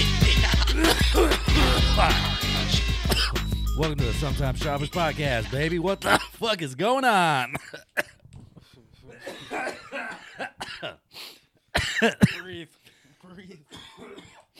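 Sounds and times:
laughter: 0.2s - 3.1s
person coughing harshly into a microphone: 3.1s - 3.4s, 6.0s - 6.4s, 7.5s - 8.2s, 9.1s - 11.0s, 11.8s - 12.6s, 13.7s - 14.5s
speech: 3.8s - 8.1s, 12.0s - 13.6s.

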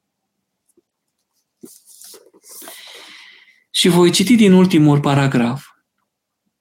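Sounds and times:
book pages turning: 0.7s - 3.0s
speech: 1.6s - 1.8s, 3.8s - 5.7s.

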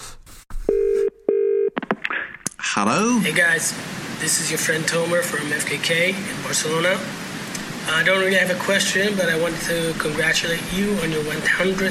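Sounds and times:
incoming phone call ringing as electronic tone bursts: 0.7s - 1.8s
speech: 2.8s - 7.2s, 7.9s - 11.8s.

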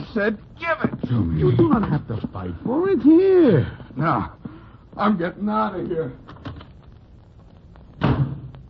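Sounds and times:
speech: 0.2s - 4.4s, 5.0s - 6.3s
door banging shut: 8.0s - 8.5s.

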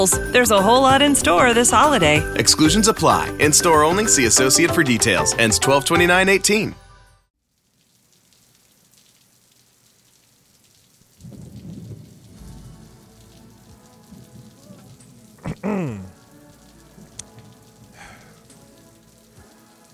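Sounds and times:
steady rain pattering on a surface: 0.0s - 5.2s, 7.4s - 19.9s
speech: 0.0s - 6.8s
low rumbling thunder: 11.2s - 15.4s.

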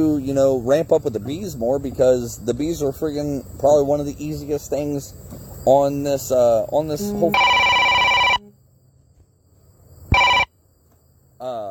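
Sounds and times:
speech: 0.0s - 7.5s
phone ringing with an incoming call: 7.1s - 8.4s, 10.1s - 10.5s.

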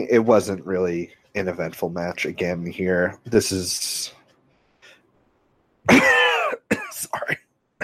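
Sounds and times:
speech: 0.0s - 4.2s, 5.8s - 6.3s
two people coughing: 5.9s - 7.8s.

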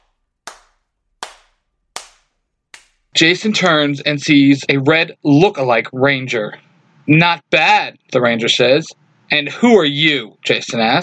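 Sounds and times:
slow hand claps: 0.0s - 3.1s
speech: 3.2s - 11.0s.

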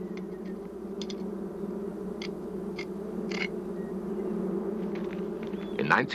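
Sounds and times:
African honeybees buzzing inside a hive: 0.0s - 6.1s
speech: 6.0s - 6.1s.

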